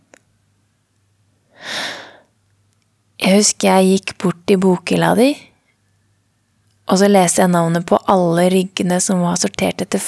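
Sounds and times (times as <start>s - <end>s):
person drawing a breath: 1.5s - 2.3s
speech: 3.3s - 5.5s, 6.9s - 10.0s.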